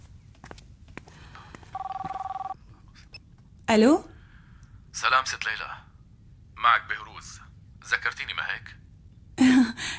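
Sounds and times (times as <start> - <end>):
telephone ringing: 1.7 - 2.6
speech: 3.7 - 4.1, 5.0 - 5.8.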